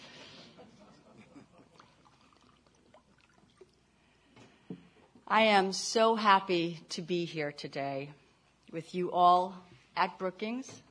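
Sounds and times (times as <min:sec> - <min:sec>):
water poured from a bottle into a glass: 0:01.8 - 0:04.0
speech: 0:05.3 - 0:10.8.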